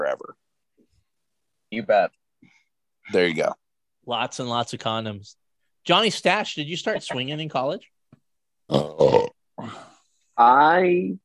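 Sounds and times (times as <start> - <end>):
speech: 0.0 - 0.5, 1.7 - 2.2, 3.1 - 8.0, 8.7 - 9.8, 10.4 - 11.2
loud burping with guttural bursts and a drawn-out belch: 8.7 - 9.9.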